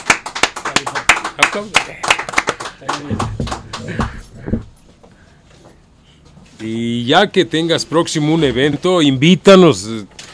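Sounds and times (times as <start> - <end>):
applause from a small group: 0.0 - 4.3
speech: 0.8 - 2.2, 2.8 - 4.7, 6.6 - 10.2.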